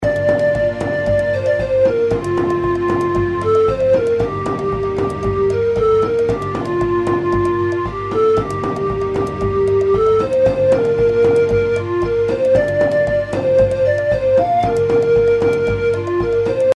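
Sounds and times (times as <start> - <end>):
outro background music: 0.0 - 16.7.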